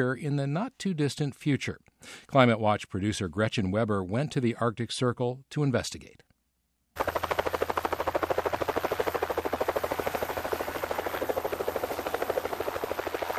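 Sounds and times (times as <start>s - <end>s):
speech: 0.0s - 6.3s
helicopter rotor chopping while lifting off over Arctic tundra: 7.0s - 13.3s.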